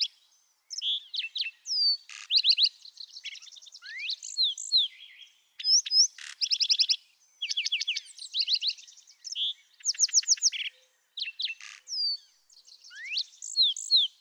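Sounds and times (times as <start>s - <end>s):
lark sparrow singing: 0.0s - 14.1s.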